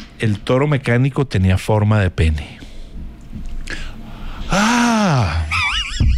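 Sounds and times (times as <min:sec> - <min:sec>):
speech: 0:00.2 - 0:02.6
single voice mimicking scandalized female screams: 0:04.5 - 0:05.6.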